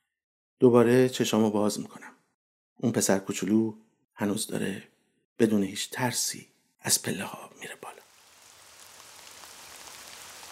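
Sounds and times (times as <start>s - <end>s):
speech: 0.6s - 2.2s, 2.8s - 8.0s
rain pattering on a surface: 8.0s - 10.4s.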